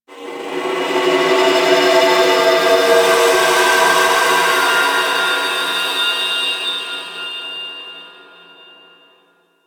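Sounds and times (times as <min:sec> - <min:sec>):
moon texture ambience: 0:00.1 - 0:07.3.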